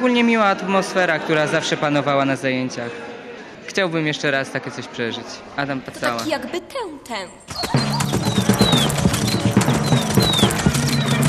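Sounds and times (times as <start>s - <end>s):
speech: 0.0s - 3.1s, 3.7s - 8.8s
faint high chirping whistles: 7.5s - 11.2s
horse hooves clip-clopping: 7.5s - 11.2s.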